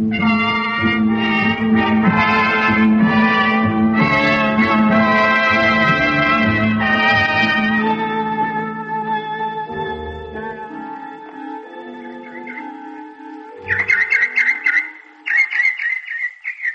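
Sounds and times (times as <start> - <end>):
sustained droning tones: 0.0 - 15.8
bird chirping: 11.4 - 16.7.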